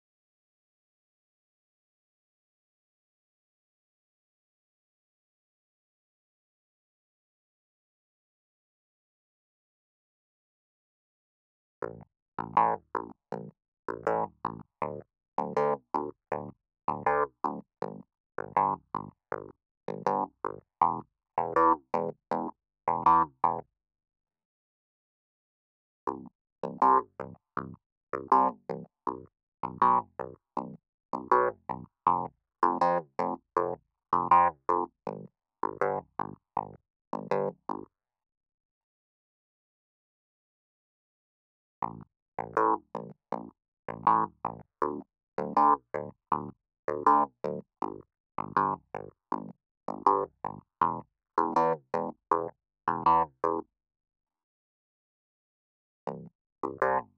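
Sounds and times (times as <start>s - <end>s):
clavinet: 11.8s - 23.6s, 26.1s - 37.8s, 41.8s - 53.6s, 56.1s - 57.1s.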